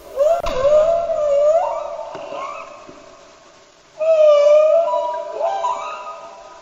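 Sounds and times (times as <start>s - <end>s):
humpback whale song: 0.0s - 6.6s.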